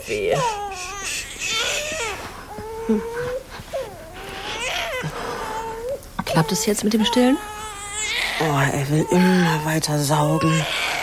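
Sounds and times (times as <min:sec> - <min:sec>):
speech: 0:00.0 - 0:00.7, 0:02.9 - 0:03.3, 0:06.4 - 0:07.6, 0:08.4 - 0:11.0
infant crying with a stomach ache: 0:00.0 - 0:11.0.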